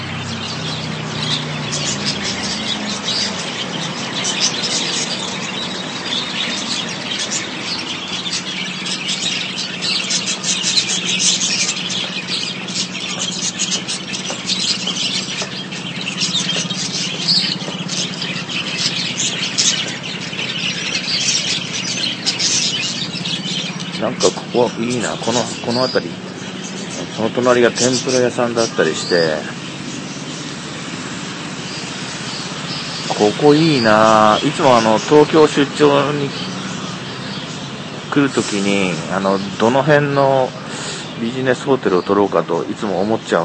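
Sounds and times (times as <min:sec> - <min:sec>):
chorus of many small birds chirping and tweeting: 0:00.0 - 0:43.4
speech: 0:25.7 - 0:26.2, 0:27.3 - 0:29.6, 0:33.2 - 0:36.6, 0:38.2 - 0:40.6, 0:41.2 - 0:43.4.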